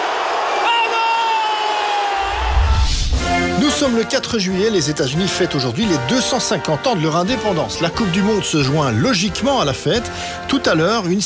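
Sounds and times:
large crowd of football supporters roaring and cheering: 0:00.0 - 0:03.6
speech: 0:03.8 - 0:11.2.

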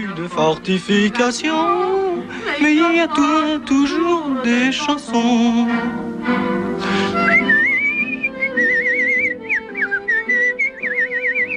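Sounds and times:
speech: 0:00.0 - 0:07.7
low musical backing: 0:00.0 - 0:11.5
man whistling a wavering melodic tune in a film: 0:07.0 - 0:11.5.

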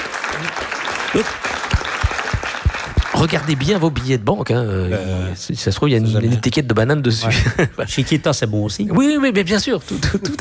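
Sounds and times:
crowd applauding a correct quiz answer: 0:00.0 - 0:04.1
speech: 0:00.4 - 0:01.6, 0:03.2 - 0:10.3.

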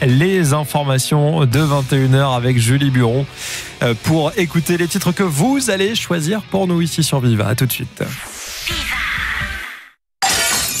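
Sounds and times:
speech: 0:00.0 - 0:09.2
glass window pane shattering: 0:10.2 - 0:10.7.

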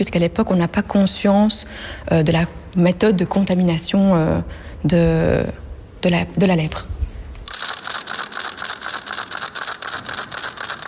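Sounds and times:
speech: 0:00.0 - 0:06.9
small crank-turned leper's rattle ratchet noisemaker clattering: 0:07.5 - 0:10.8.

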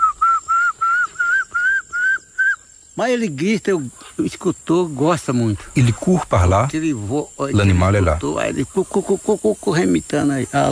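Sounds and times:
person whistling imitating a small tinamou call: 0:00.0 - 0:02.6
speech: 0:03.0 - 0:10.7.

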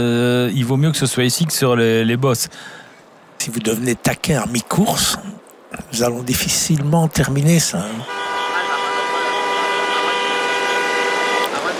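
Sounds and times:
speech: 0:00.0 - 0:08.4
dense noisy outdoor background: 0:00.0 - 0:11.7
vehicle horn blaring: 0:07.9 - 0:11.7.

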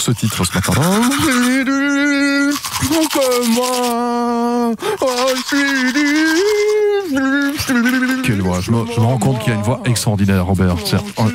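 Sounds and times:
manual toothbrush scrubbing teeth: 0:00.0 - 0:11.3
speech: 0:00.0 - 0:11.3
person humming or singing loudly: 0:01.1 - 0:11.3.

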